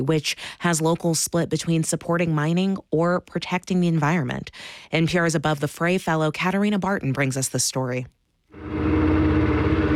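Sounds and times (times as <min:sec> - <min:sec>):
speech: 0:00.0 - 0:09.0
fisherman's motorboat engine running over clear blue waters: 0:08.6 - 0:09.9.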